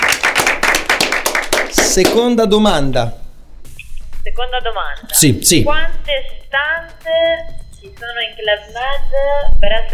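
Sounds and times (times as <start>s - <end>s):
small group clapping: 0.0s - 2.4s
speech: 2.0s - 3.2s, 4.4s - 9.9s.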